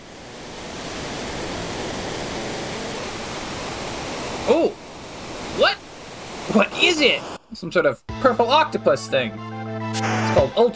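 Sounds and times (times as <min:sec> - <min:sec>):
rushing waterfall in a video game: 0:00.1 - 0:07.2
speech: 0:06.6 - 0:10.7.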